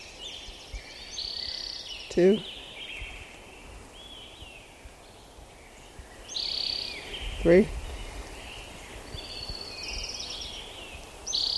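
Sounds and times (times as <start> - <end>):
orange-crowned warbler singing: 0.0 - 11.5
steady hiss of outdoor noise: 0.0 - 11.5
speech: 2.2 - 2.6, 7.4 - 7.8.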